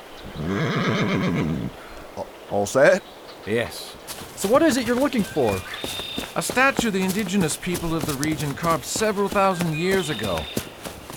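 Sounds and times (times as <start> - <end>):
horse whinnying: 0.4 - 1.8
speech: 1.0 - 1.9, 2.5 - 11.1.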